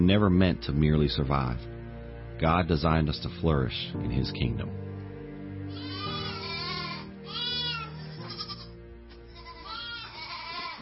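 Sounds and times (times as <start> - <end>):
speech: 0.0 - 1.8, 2.4 - 4.8
goats bleating: 5.7 - 10.8.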